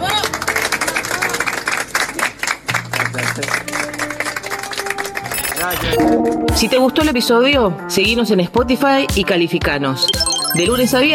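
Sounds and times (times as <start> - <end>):
train passengers clapping for a passenger's sister: 0.0 - 5.7
speech: 3.4 - 3.7, 5.6 - 11.1.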